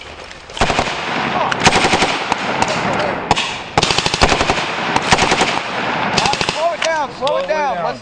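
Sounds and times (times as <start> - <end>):
machine-gun and rifle fire from army infantry soldiers during a combined arms live fire exercise: 0.6 - 6.9.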